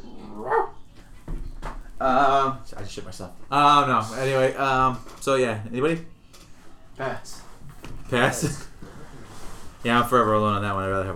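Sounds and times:
dog barking with a whiny yipping edge: 0:00.4 - 0:00.8
speech: 0:02.0 - 0:06.2, 0:07.0 - 0:07.4, 0:08.1 - 0:08.7, 0:09.8 - 0:11.1.

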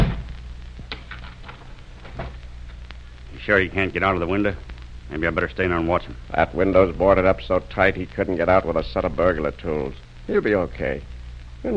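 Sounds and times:
door closing with a dull thud: 0:00.0 - 0:00.3
low steady hum: 0:00.0 - 0:11.7
speech: 0:03.4 - 0:11.7.

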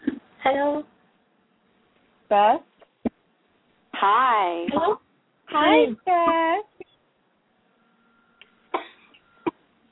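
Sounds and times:
speech: 0:00.5 - 0:00.9, 0:02.3 - 0:02.7, 0:04.0 - 0:06.7
person coughing: 0:08.8 - 0:09.6.

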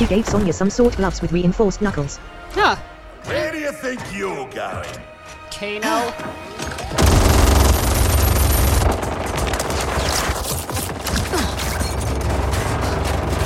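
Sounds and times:
speech: 0:00.1 - 0:07.2
machine gun firing in a fighting video game: 0:06.9 - 0:13.4.

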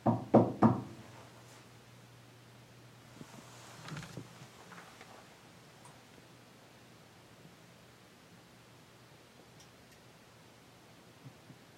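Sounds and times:
loud quick knocks on a solid surface: 0:00.0 - 0:01.0
low steady hum: 0:00.0 - 0:11.7
faint rustles: 0:03.1 - 0:05.5.

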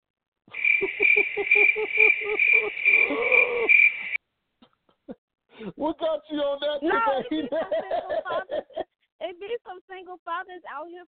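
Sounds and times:
crickets chirping in a shrill trill: 0:00.5 - 0:04.2
laughter: 0:00.8 - 0:03.7, 0:06.8 - 0:08.9
speech: 0:06.1 - 0:08.7, 0:10.1 - 0:11.0.

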